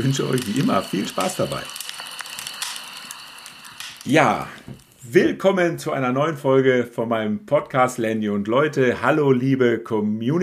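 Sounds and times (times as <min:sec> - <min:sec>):
speech: 0:00.0 - 0:01.8, 0:04.0 - 0:10.4
campfire crackling with pops and snaps of burning wood: 0:00.0 - 0:05.1.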